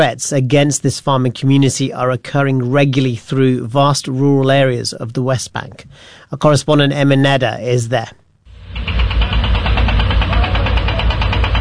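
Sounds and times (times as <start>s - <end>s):
speech: 0.0s - 9.0s
heavy machinery engines of diggers, cranes and lorries rumbling in the hills of Hebron: 8.6s - 11.5s
rapid rhythmic knocking pulse: 8.6s - 11.5s.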